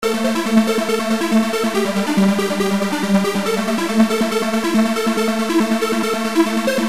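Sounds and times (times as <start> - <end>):
thin synth lead: 0.0 - 6.8.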